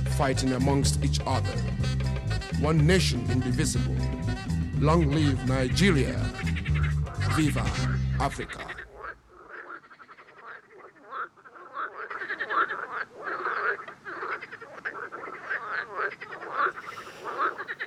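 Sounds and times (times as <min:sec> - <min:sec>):
speech: 0:00.2 - 0:01.9, 0:02.6 - 0:04.2, 0:04.8 - 0:06.4, 0:07.4 - 0:08.8
dense chorus of frogs croaking: 0:08.1 - 0:17.8.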